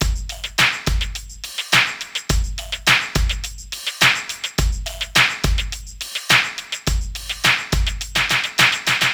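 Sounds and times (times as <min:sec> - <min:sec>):
pop rock drum beat at moderate tempo: 0:00.0 - 0:09.1.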